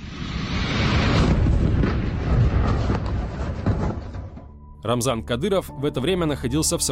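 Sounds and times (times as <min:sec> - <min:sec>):
gas tank explosion: 0:00.7 - 0:04.5
speech: 0:04.8 - 0:06.9.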